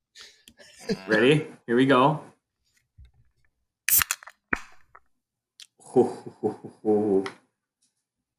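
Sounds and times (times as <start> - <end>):
laughter: 0.5 - 1.4, 5.9 - 7.2
speech: 0.9 - 2.3, 6.0 - 7.4
IPA beer can cracked open with a sharp metallic pop: 3.9 - 5.0.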